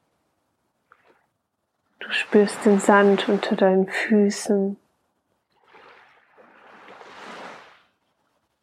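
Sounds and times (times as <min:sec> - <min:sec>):
ocean waves: 0:01.9 - 0:04.5, 0:05.5 - 0:08.0
speech: 0:02.1 - 0:04.8.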